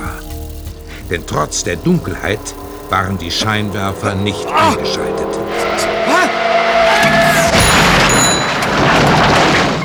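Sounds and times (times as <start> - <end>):
car skidding with a rising squeal: 0.0 - 9.8
debris tinkling and scattering: 0.0 - 9.8
speech: 1.1 - 6.3
car crash impact: 4.3 - 9.8
glass shattering: 7.2 - 9.8.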